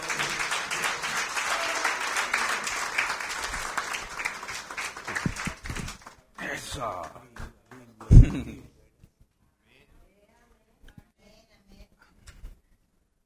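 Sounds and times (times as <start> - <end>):
laughter: 0.0 - 3.2, 8.0 - 8.7
congregation applauding: 0.0 - 8.6
louder individual claps: 0.0 - 8.6
speech: 6.8 - 7.2, 8.4 - 8.7.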